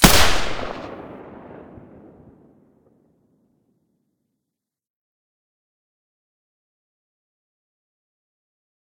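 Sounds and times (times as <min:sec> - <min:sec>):
G36 rifle shot with silencer: 0:00.0 - 0:02.0.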